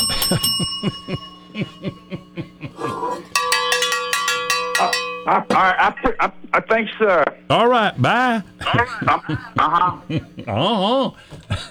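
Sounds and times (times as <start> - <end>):
laughter: 0.0 - 3.3, 5.2 - 6.5, 7.6 - 11.6
bell ringing in quick bright strikes: 0.0 - 5.7
speech: 0.3 - 2.0, 5.3 - 11.6.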